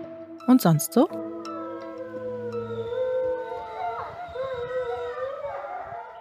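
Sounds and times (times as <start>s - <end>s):
speech: 0.5s - 1.2s
chorus of wolves howling: 1.2s - 6.2s.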